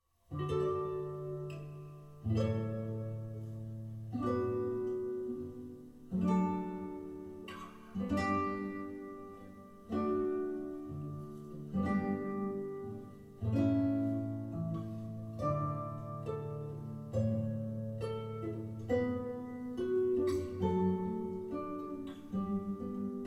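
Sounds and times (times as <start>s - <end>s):
classical guitar piece: 0.2s - 23.2s.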